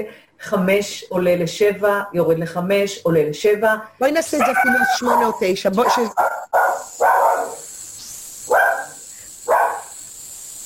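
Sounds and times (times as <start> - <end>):
speech: 0.0 - 7.7
dog barking: 4.4 - 7.6, 8.5 - 9.9.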